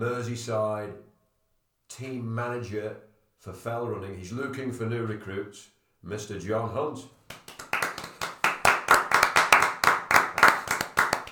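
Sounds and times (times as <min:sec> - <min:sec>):
speech: 0:00.0 - 0:01.1, 0:01.9 - 0:07.4
hand clapping applause from a small group: 0:07.3 - 0:11.3.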